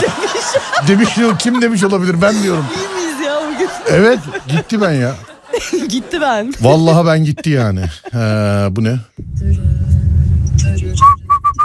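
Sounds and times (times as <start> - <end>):
laughter: 0.0 - 8.7
speech: 0.8 - 3.0, 3.6 - 9.8
low rumbling noise: 9.2 - 11.6
whistling: 11.0 - 11.6.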